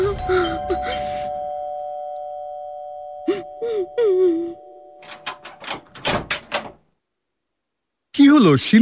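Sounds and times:
doorbell warbling melodic electronic chime: 0.2 - 5.7
sharp clicks and knocks: 5.1 - 6.8
speech: 8.4 - 8.8.

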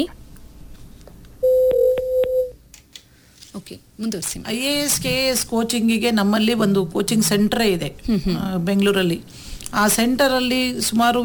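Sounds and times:
incoming telephone call tone: 1.4 - 2.5
speech: 3.6 - 11.2.

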